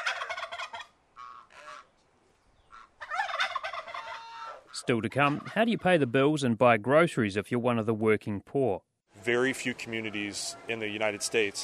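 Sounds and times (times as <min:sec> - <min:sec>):
fowl clucking and gobbling while being fed in a garden: 0:00.0 - 0:01.9, 0:02.7 - 0:05.8, 0:09.4 - 0:11.6
speech: 0:04.8 - 0:11.6.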